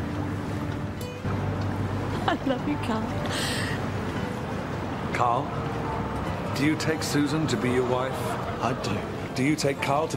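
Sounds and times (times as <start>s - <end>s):
boat engine rumble on the River Thames during a wedding: 0.0s - 10.1s
speech: 2.3s - 3.6s, 5.2s - 5.8s, 6.6s - 10.1s.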